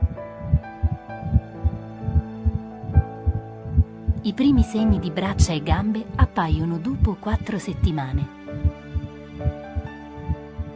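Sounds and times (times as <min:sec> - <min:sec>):
low sustained hum: 0:00.0 - 0:04.2
rapid embryonic heartbeat: 0:00.5 - 0:04.2, 0:08.6 - 0:10.5
speech: 0:04.2 - 0:08.4.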